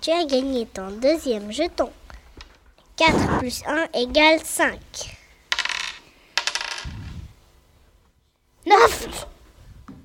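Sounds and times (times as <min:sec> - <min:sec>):
speech: 0:00.0 - 0:02.0, 0:03.0 - 0:05.2, 0:08.7 - 0:09.3
dice rattling and clattering across a hard surface: 0:05.5 - 0:07.2.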